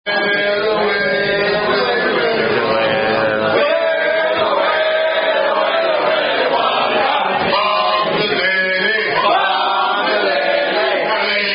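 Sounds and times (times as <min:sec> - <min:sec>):
rugby club members singing a rugby song: 0:00.1 - 0:11.5.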